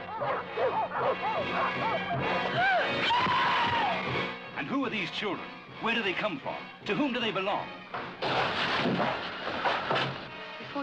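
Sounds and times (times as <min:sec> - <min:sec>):
large guard dogs barking aggressively behind barbed wire: 0:00.0 - 0:02.3
speech: 0:00.2 - 0:10.1.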